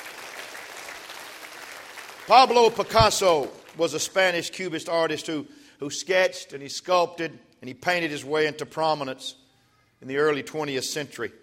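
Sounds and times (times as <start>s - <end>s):
crowd clapping hands: 0.0s - 4.0s
speech: 2.3s - 9.4s, 10.0s - 11.4s.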